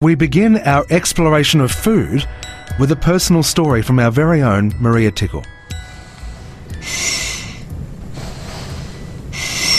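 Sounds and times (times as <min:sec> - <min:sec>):
speech: 0:00.0 - 0:05.6
girl breathing at a children's hospital: 0:05.7 - 0:09.7.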